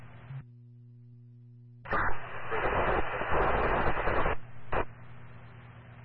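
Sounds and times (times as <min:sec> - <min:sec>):
low steady hum: 0:00.0 - 0:06.0
garbled radio transmission with static from a responding unit: 0:01.9 - 0:05.0.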